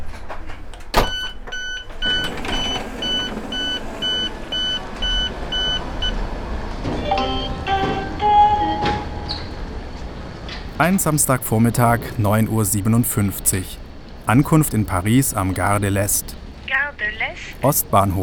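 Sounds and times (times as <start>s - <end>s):
train doors hissing and clunking open: 0.0s - 16.3s
electronic train door beeps: 1.0s - 6.2s, 6.9s - 9.6s
train braking and rumbling to a stop: 1.2s - 14.8s
speech: 10.8s - 16.4s, 17.0s - 18.2s.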